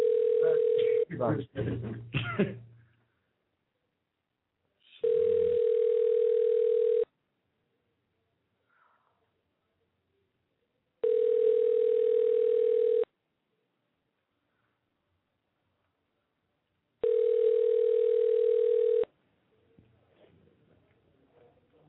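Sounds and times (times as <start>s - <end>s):
telephone ringback tone while placing a call to a house: 0.0s - 1.0s, 5.0s - 7.1s, 11.0s - 13.1s, 17.0s - 19.1s
person speaking: 0.0s - 2.6s.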